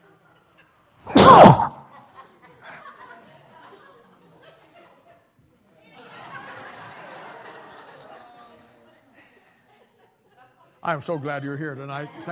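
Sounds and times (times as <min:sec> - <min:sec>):
person sneezing: 0:01.1 - 0:01.9
speech: 0:10.9 - 0:12.3.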